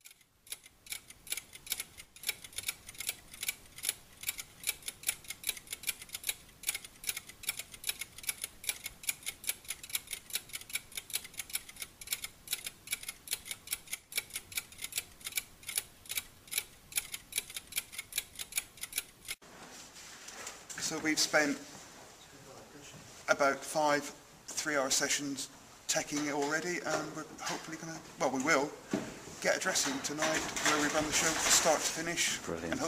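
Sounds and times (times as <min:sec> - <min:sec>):
layered ticking of several clocks, a stage show sound effect: 0:00.0 - 0:19.4
speech: 0:20.9 - 0:21.7, 0:23.4 - 0:32.8.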